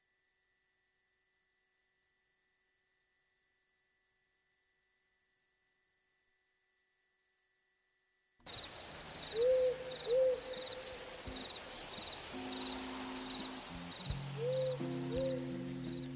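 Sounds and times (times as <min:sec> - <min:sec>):
burrowing owl giving a soft two-note hoot: 0:08.5 - 0:16.1
crickets chirring: 0:08.5 - 0:16.1.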